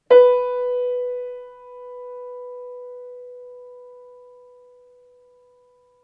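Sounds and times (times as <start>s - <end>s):
piano note B: 0.0s - 6.0s.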